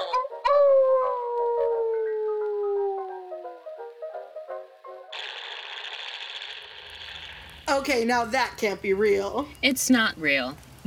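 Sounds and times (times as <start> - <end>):
eerie werewolf howl in a radio drama: 0.1 - 3.7
speech: 7.7 - 10.8.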